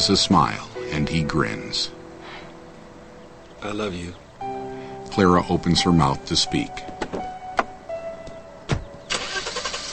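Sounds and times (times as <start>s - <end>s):
speech: 0.0s - 2.0s, 3.6s - 4.2s, 5.1s - 7.3s
sharp thumps: 6.9s - 9.0s
car engine cranking to life and running: 8.9s - 9.9s.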